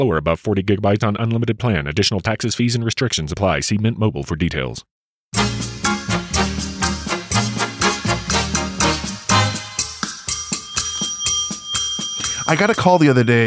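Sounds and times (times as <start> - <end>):
speech: 0.0 - 5.7, 12.5 - 13.4
busy rhythmic backing music: 5.4 - 13.3
bell ringing: 9.4 - 13.4.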